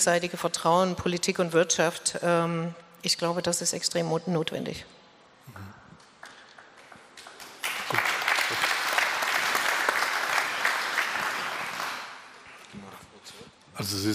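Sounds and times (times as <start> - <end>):
speech: 0.0 - 5.7, 13.8 - 14.1
audience applause: 7.3 - 12.6.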